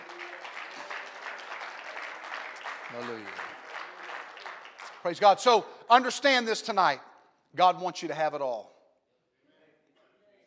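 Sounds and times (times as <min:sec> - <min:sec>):
audience clapping hands: 0:00.0 - 0:06.1
speech: 0:02.9 - 0:03.6, 0:05.0 - 0:08.8.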